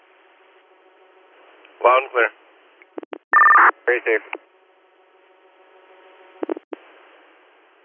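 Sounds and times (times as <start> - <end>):
speech: 1.8 - 2.4, 3.9 - 4.5
radio dispatch alert tones for a fire and rescue page: 3.0 - 3.7.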